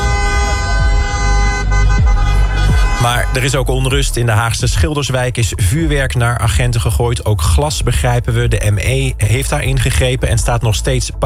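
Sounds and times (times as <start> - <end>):
car horns honking in celebration after a football match: 0.0 - 4.5
speech: 3.0 - 11.2.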